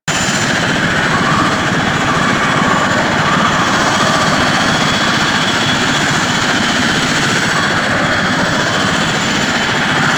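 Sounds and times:
engine running: 0.0s - 10.1s.

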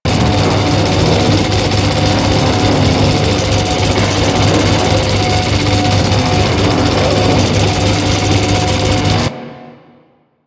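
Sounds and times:
large spinning wheel turning: 0.0s - 9.3s.

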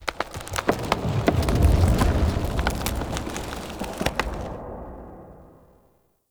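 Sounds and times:
root movement in a root cave: 0.0s - 4.8s.

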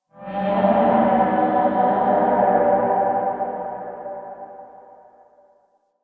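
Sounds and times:
distant town alarm horn: 0.2s - 5.1s.

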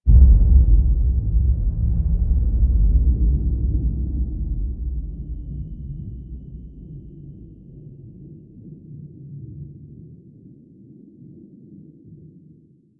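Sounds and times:
cinematic spiral boom intro: 0.1s - 7.8s.

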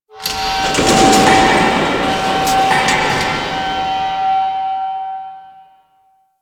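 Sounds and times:
mining machines on an asteroid: 0.1s - 4.5s.

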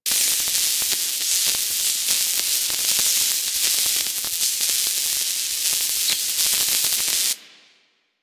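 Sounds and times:
small spark shower: 0.1s - 7.6s.

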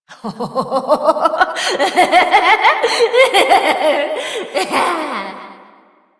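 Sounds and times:
evil doppelganger laughter: 0.1s - 5.9s.

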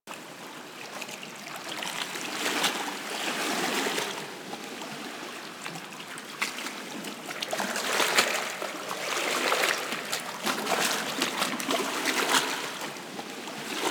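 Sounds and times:
ocean water: 0.1s - 13.8s.

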